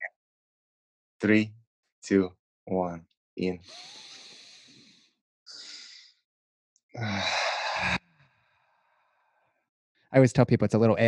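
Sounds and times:
speech: 1.2s - 4.1s, 7.0s - 8.0s, 10.1s - 11.0s
drawn-out sighing exhale with a hint of voice: 3.6s - 6.2s, 7.0s - 8.0s
person breathing in: 3.6s - 6.2s, 7.0s - 9.0s.

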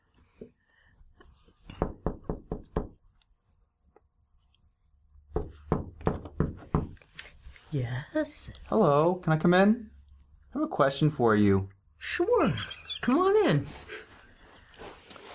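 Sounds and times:
sharp knocking on a door: 1.7s - 3.0s, 5.3s - 7.0s
speech: 7.7s - 9.9s, 10.6s - 14.0s.

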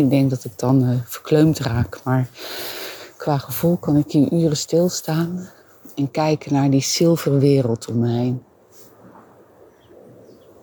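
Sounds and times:
light rumble of wind on a frosty morning: 0.0s - 2.4s, 3.1s - 10.6s
speech: 0.0s - 8.5s
faint bird chirps on a frosty morning: 9.6s - 10.6s.

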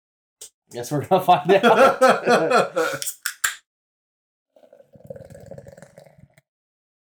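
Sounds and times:
speech: 0.7s - 3.2s
laughter: 1.2s - 3.1s
beer poured hard into a glass jug: 4.6s - 6.4s.

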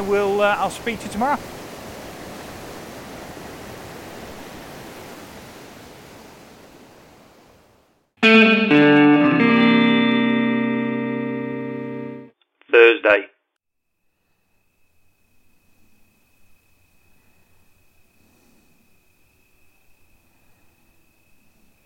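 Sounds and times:
speech: 0.0s - 1.6s
sea waves at the shoreline: 0.0s - 8.0s
bright sustained ringing chord: 8.2s - 12.3s.

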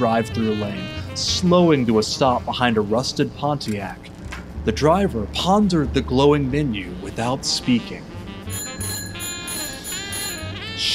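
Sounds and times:
speech: 0.0s - 8.1s
bicycle bell ringing: 8.5s - 10.6s.

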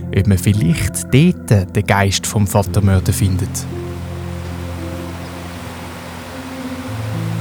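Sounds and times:
speech: 0.1s - 3.9s
flowing river water rushing: 2.8s - 7.3s.

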